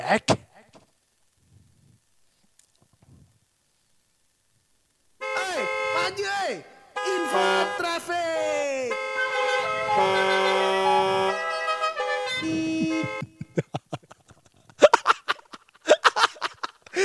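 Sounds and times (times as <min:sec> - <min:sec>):
speech: 0:00.1 - 0:00.4
car horn honking a wavering melody: 0:05.2 - 0:13.6
voices and laughter: 0:12.4 - 0:17.0.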